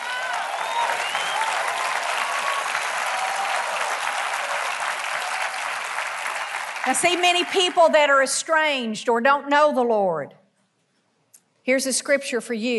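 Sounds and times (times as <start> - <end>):
audience clapping: 0.0 - 8.3
speech: 6.8 - 10.4, 11.7 - 12.7.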